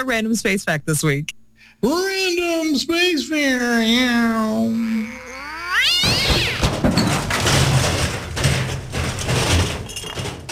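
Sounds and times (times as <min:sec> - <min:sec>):
speech: 0:00.0 - 0:05.2
cat caterwauling: 0:04.6 - 0:06.7
objects clattering and crashing: 0:06.0 - 0:10.5.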